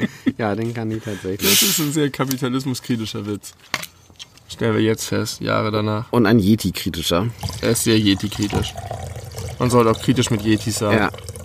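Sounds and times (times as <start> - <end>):
laughter: 0.0 - 0.4
speech: 0.0 - 4.0, 4.6 - 11.4
liquor trickling into a glass: 7.3 - 11.4.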